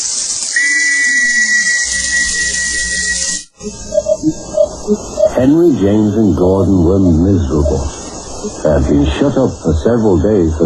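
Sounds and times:
long shrill whistle blast: 0.5 - 4.2
speech: 4.9 - 10.6.

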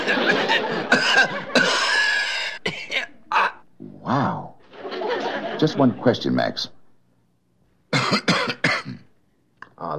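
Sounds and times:
laughter: 0.0 - 3.6, 4.6 - 6.3
harsh rasping wheezy coughs: 0.8 - 3.6, 7.9 - 9.1
speech: 5.6 - 6.8.

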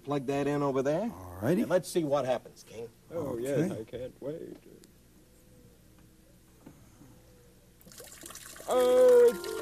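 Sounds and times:
speech: 0.0 - 4.8, 8.7 - 9.5
water trickling and splashing from a small recirculating waterfall: 7.8 - 9.5.

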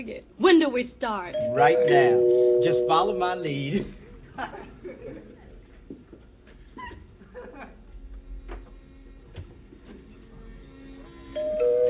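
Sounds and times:
speech: 0.0 - 4.7
room noise: 0.0 - 11.8
doorbell chiming: 1.3 - 3.2, 11.4 - 11.8
laughter: 3.7 - 5.6, 6.7 - 8.0.

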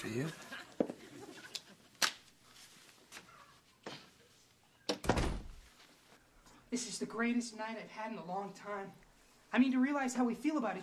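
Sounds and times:
speech: 0.0 - 0.4, 6.7 - 10.8
door creaking: 4.9 - 5.6.

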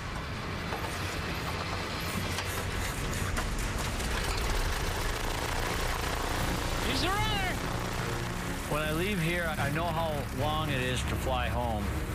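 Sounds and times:
flooded small aircraft engine cranking and running: 0.0 - 12.1
speech: 8.8 - 12.1.

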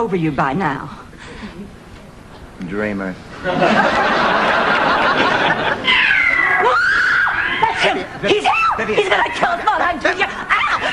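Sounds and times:
speech: 0.0 - 1.8, 2.6 - 4.2, 7.8 - 10.4
laughter: 3.4 - 6.1
two alley cats yowling: 5.8 - 9.6.

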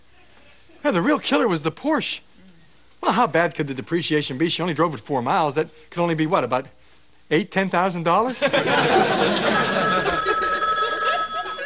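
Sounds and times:
speech: 0.9 - 2.3, 3.0 - 10.1
laughter: 8.3 - 11.6
telephone ringing for a call from a car phone: 9.4 - 11.6.

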